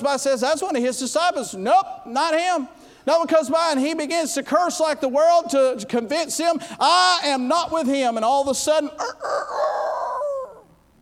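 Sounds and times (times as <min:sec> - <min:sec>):
speech: 0:00.0 - 0:10.0
rooster crowing in a city: 0:09.0 - 0:10.7.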